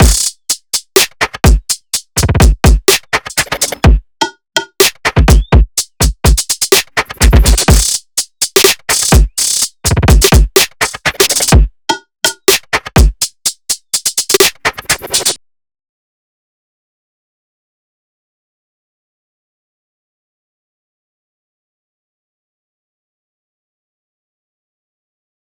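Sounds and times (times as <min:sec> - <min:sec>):
dry drums: 0:00.0 - 0:15.4.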